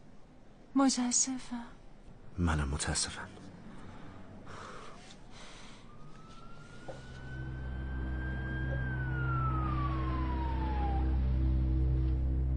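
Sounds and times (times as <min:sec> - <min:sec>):
speech: 0:00.8 - 0:01.8, 0:02.4 - 0:03.5
heavy steady engine rumble: 0:03.2 - 0:12.5
police siren wailing: 0:05.5 - 0:12.5.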